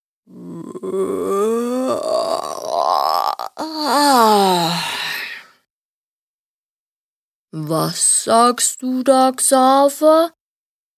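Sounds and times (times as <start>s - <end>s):
speech: 0.3s - 1.3s, 7.7s - 10.4s
long hearty human yawn: 0.3s - 5.6s.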